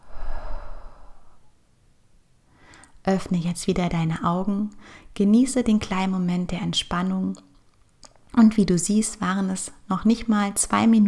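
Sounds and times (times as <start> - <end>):
deep breath exhaled through an open mouth during a relaxation breathing exercise: 0.0 - 1.5
speech: 3.0 - 7.5, 8.4 - 11.0.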